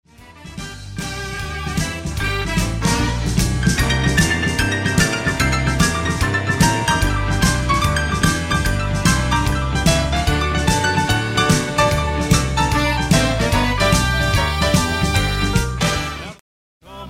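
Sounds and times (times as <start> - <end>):
instrumental solo: 1.1 - 16.4.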